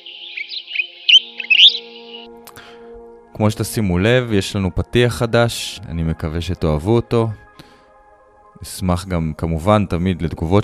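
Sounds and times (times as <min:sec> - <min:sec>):
bird chirping: 0:00.0 - 0:02.3
soft steady tonal background: 0:00.0 - 0:10.6
speech: 0:03.4 - 0:07.5, 0:08.6 - 0:10.6.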